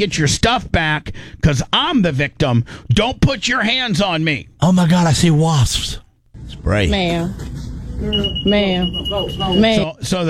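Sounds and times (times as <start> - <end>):
speech: 0.0 - 10.2
shop security tag alarm beeping with a piercing high tone: 8.0 - 9.9.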